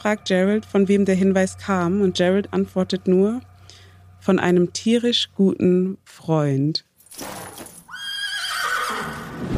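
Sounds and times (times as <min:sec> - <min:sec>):
speech: 0:00.0 - 0:03.5, 0:04.2 - 0:07.4
horse whinnying and snorting: 0:07.9 - 0:09.4.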